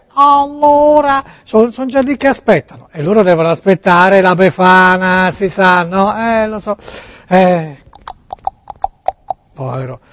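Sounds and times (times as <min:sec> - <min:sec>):
speech: 0:00.2 - 0:07.8, 0:09.6 - 0:10.1
sharp hoof clops: 0:07.9 - 0:09.4
donkey braying: 0:07.9 - 0:09.5.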